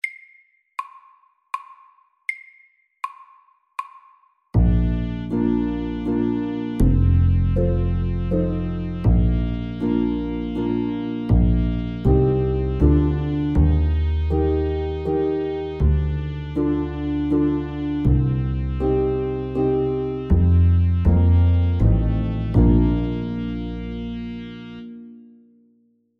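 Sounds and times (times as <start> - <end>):
waltz music: 4.6 - 25.2.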